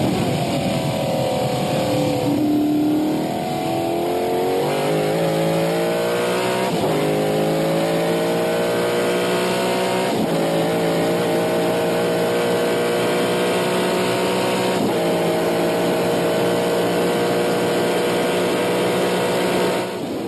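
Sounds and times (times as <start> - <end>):
small block Chevy V8 engine in McLaren M6 Can-Am race car revving: 0.0 - 20.1.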